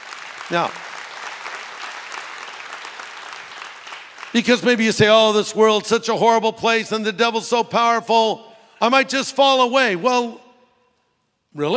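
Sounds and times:
large crowd applauding in a big room: 0:00.0 - 0:05.6
speech: 0:00.5 - 0:00.9, 0:04.4 - 0:10.4, 0:11.6 - 0:11.7.

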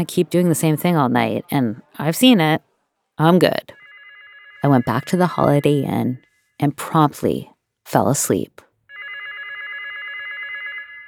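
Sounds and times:
speech: 0:00.0 - 0:03.8, 0:04.6 - 0:08.7
hotel room telephone ringing with buzzing electronic trill: 0:03.4 - 0:06.4, 0:08.9 - 0:11.0.

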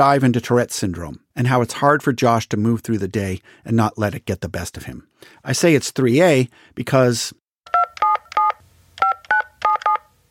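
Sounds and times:
speech: 0:00.0 - 0:07.4
touch-tone telephone keypad beeps dialing for a prank call: 0:07.7 - 0:10.0.

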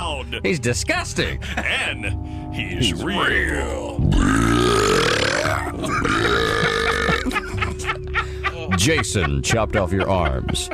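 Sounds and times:
speech: 0:00.3 - 0:04.5, 0:08.8 - 0:10.7
loud drawn-out burp of swallowed air: 0:04.0 - 0:07.4
laughter: 0:05.5 - 0:10.7.

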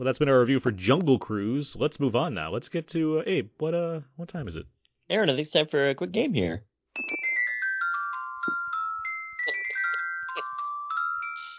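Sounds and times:
speech: 0:00.0 - 0:07.2
phone ringtone electronic melody: 0:07.0 - 0:11.5.

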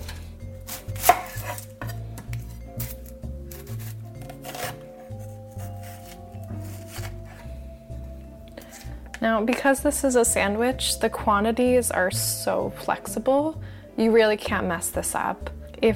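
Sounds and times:
knife chopping an onion for a sandwich: 0:00.0 - 0:07.5
speech: 0:09.2 - 0:15.9.

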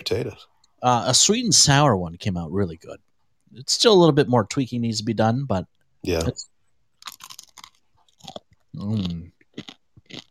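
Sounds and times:
speech: 0:00.1 - 0:06.5, 0:08.8 - 0:09.4
chewing crunchy food: 0:07.0 - 0:10.2.

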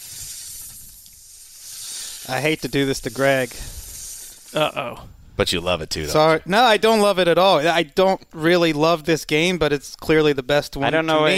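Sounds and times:
steady breathy snake hiss sound effect: 0:00.0 - 0:04.9
speech: 0:02.3 - 0:03.8, 0:04.5 - 0:11.3.

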